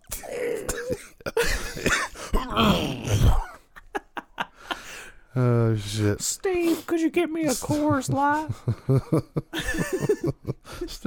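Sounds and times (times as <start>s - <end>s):
man's voice imitating a raspy hacking cough: 0.1s - 3.7s
speech: 5.4s - 11.0s
laughter: 7.5s - 10.9s.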